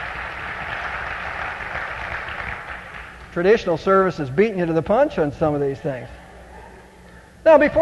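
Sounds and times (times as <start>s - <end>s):
audience at a church service applauding: 0.0s - 3.3s
speech: 3.4s - 6.2s, 7.4s - 7.7s.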